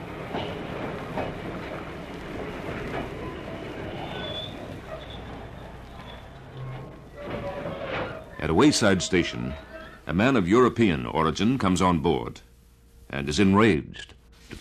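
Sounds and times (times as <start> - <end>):
train in South Africa clattering along the rails: 0.0 - 10.0
faint metallic squeals of train: 3.2 - 10.1
speech: 8.5 - 12.5, 13.1 - 14.5.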